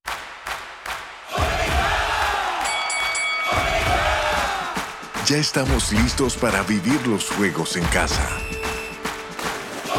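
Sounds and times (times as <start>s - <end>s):
large crowd cheering and applauding: 0.1s - 9.9s
people shouting: 1.3s - 5.1s, 9.6s - 9.9s
speech: 5.3s - 8.6s
whistles: 8.1s - 9.6s.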